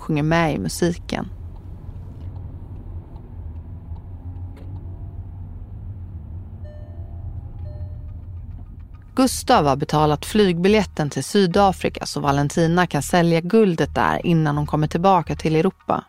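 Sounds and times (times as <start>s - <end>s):
car engine rumble: 0.0s - 11.2s
speech: 0.1s - 1.4s, 9.2s - 16.0s
tire noise on road: 1.3s - 9.7s
tonal chime: 6.6s - 8.4s.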